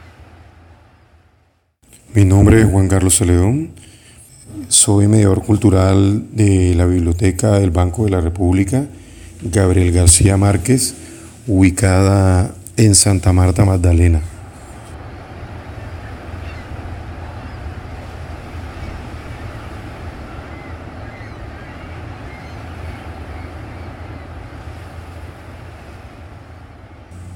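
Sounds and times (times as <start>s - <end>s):
sea waves washing onto the shore at the bay of Santa Marta Magdalena: 0.0s - 27.3s
speech: 1.9s - 14.3s.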